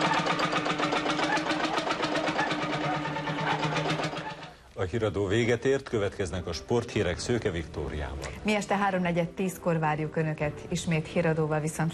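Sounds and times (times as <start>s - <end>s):
old restored Lanz Bulldog tractor engine chugging: 0.0s - 4.6s
speech: 4.8s - 11.9s.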